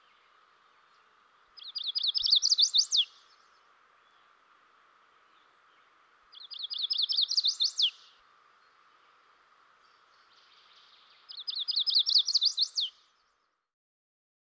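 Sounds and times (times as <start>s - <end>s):
chestnut-sided warbler singing: 0.0s - 4.3s, 5.2s - 8.1s, 8.7s - 13.0s
faint steady hum: 0.0s - 11.8s.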